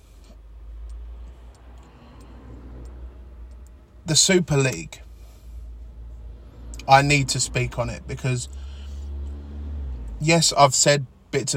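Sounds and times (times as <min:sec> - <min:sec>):
dash cam system switching off with soft electronic ticks in a parked car: 0:00.8 - 0:04.0
speech: 0:04.1 - 0:05.1, 0:06.9 - 0:08.7, 0:10.2 - 0:11.5.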